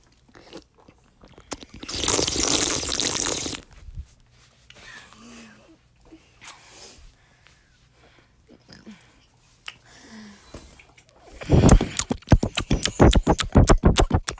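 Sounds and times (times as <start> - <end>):
people gulping and swallowing water: 1.3 - 3.6, 11.4 - 14.3
person slurping water after a toast: 1.4 - 3.6, 11.4 - 14.3.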